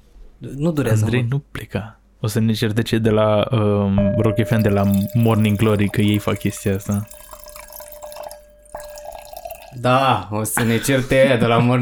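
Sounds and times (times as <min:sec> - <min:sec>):
speech: 0:00.4 - 0:07.2, 0:09.8 - 0:11.7
liquid pouring into a glass: 0:04.5 - 0:10.3.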